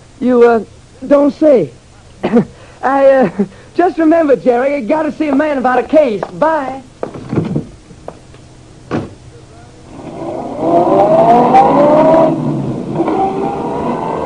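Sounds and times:
speech: 0.2 - 6.9
car door thumping shut: 8.9 - 9.2
car engine starting and revving as car drives off: 9.8 - 14.2.

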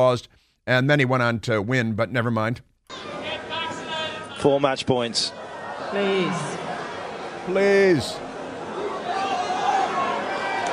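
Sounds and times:
speech: 0.0 - 3.1, 4.4 - 6.7, 7.4 - 8.2
rowdy tennis crowd chatter: 2.9 - 10.7.

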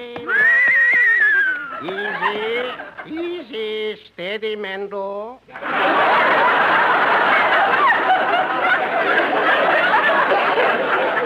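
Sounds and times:
laughter: 0.2 - 3.7, 5.5 - 11.2
horse whinnying loudly: 0.3 - 1.8
speech: 1.8 - 7.5.

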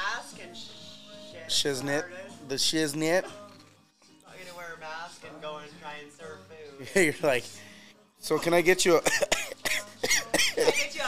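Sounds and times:
speech: 1.5 - 3.4, 6.8 - 9.4
person coughing harshly with a throaty hack: 9.0 - 10.8.

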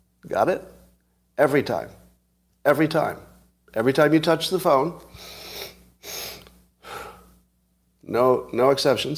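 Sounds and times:
speech: 0.2 - 0.7, 1.4 - 2.0, 2.6 - 5.4, 8.0 - 9.1
deliberate breathing in a breathing exercise: 5.1 - 7.4.

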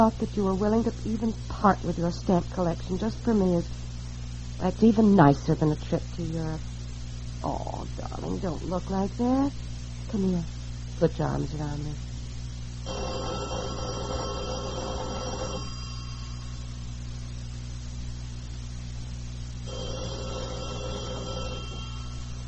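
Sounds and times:
speech: 0.0 - 4.0, 4.6 - 6.7, 7.4 - 12.1, 12.8 - 13.9
steady hiss and hum: 0.0 - 22.4
telephone ringing: 12.8 - 16.4, 19.7 - 22.4.

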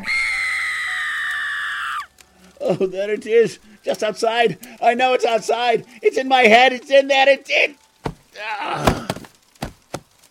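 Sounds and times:
eerie high-pitched scream from a skull: 0.0 - 2.1
speech: 2.7 - 7.8, 8.4 - 8.9.

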